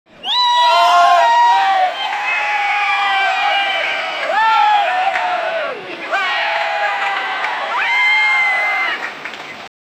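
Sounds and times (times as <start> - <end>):
crowd screaming at a protest: 0.2 - 9.2.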